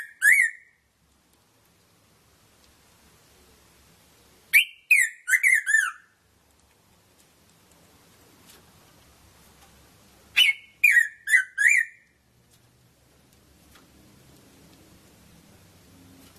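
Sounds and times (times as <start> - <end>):
red-throated parrotfinch Erythrura psittacea chirping: 0.0 - 0.8, 4.6 - 6.1, 10.3 - 12.1.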